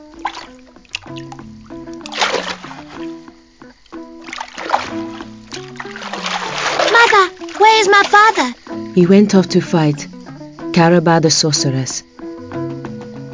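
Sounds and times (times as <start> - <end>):
water splashing as a child washes himself: 0.0 - 9.2
speech: 8.0 - 10.2, 10.8 - 12.1.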